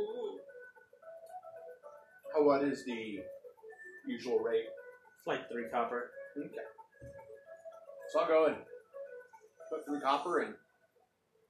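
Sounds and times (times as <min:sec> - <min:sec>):
bird cooing and calling: 0:00.0 - 0:00.7
speech: 0:02.4 - 0:03.4, 0:04.1 - 0:06.8, 0:08.1 - 0:08.8, 0:09.7 - 0:10.6.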